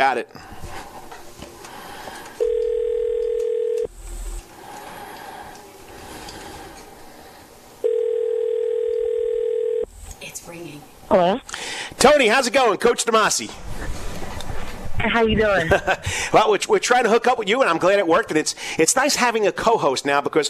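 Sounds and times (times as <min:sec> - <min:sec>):
speech: 0:00.0 - 0:00.6, 0:10.5 - 0:13.6, 0:15.0 - 0:20.4
telephone line tones while a call is dialed: 0:02.4 - 0:03.9, 0:07.8 - 0:09.9.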